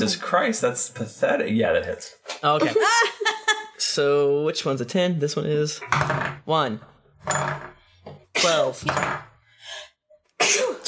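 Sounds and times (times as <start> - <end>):
speech: 0.0 - 3.2, 3.9 - 7.5, 8.5 - 9.3
person sneezing: 10.4 - 10.8.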